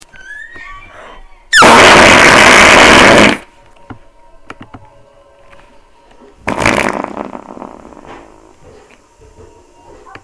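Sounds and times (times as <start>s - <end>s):
big bomb fart: 1.6s - 3.5s, 6.4s - 8.8s.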